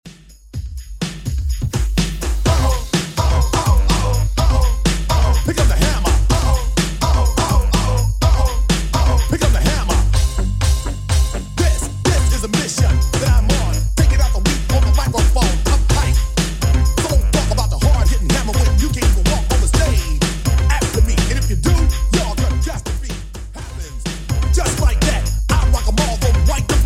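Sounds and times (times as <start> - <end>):
drum machine beat at 125 bpm: 0.0 - 26.8.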